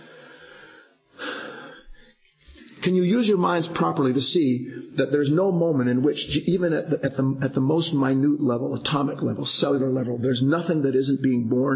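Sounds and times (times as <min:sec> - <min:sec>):
deep breath: 0:00.0 - 0:02.8
speech: 0:02.8 - 0:11.7.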